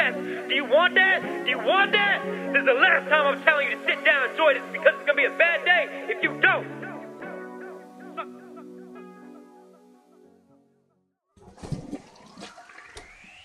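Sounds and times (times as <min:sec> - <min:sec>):
speech: 0:00.5 - 0:06.8
water splashing and gurgling into a bottle: 0:11.4 - 0:13.4.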